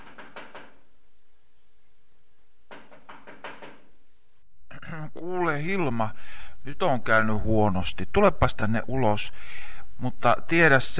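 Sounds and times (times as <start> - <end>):
sharp knocking on a window: 2.7 - 3.8
speech: 5.2 - 10.9.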